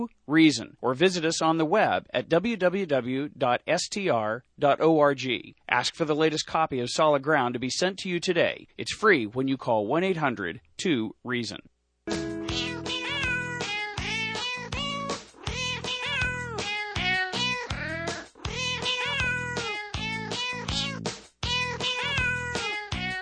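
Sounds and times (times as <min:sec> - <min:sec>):
speech: 0:00.0 - 0:11.7
cat meowing: 0:12.4 - 0:23.2.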